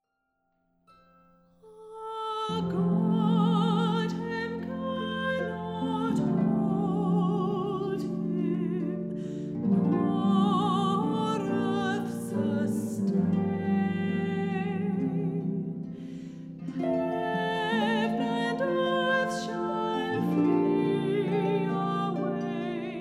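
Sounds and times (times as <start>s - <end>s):
four girls playing harps: 2.3s - 22.9s.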